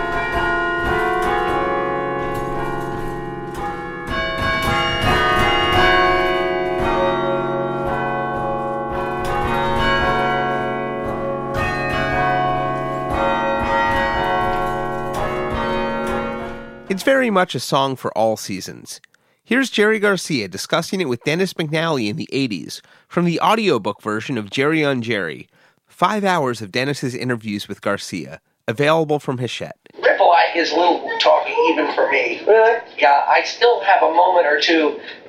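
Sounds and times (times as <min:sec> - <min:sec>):
tower chime bells at Cornell University playing a melody: 0:00.0 - 0:17.0
speech: 0:17.0 - 0:35.2.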